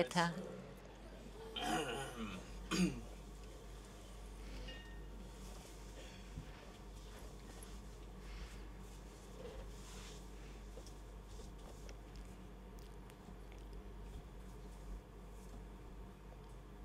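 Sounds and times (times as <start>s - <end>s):
speech: 0.0s - 0.5s
low steady hum: 0.0s - 16.8s
people clearing throats: 1.4s - 3.2s
people coughing: 1.4s - 3.2s.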